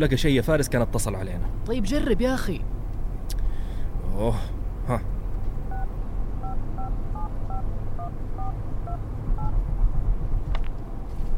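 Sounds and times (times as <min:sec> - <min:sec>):
speech: 0:00.0 - 0:02.7, 0:04.2 - 0:05.1
steady low rumble: 0:02.6 - 0:11.3
mobile phone electronic keypad dual-tone beeps: 0:05.7 - 0:09.5.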